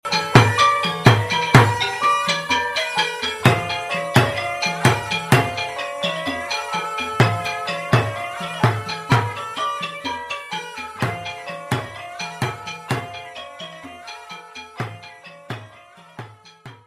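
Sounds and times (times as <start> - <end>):
Cambodian music: 0.0 - 16.8.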